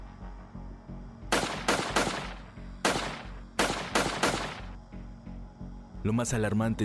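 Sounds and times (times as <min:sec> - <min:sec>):
gunshots fired at a house: 0:01.3 - 0:04.8
speech: 0:06.0 - 0:06.8.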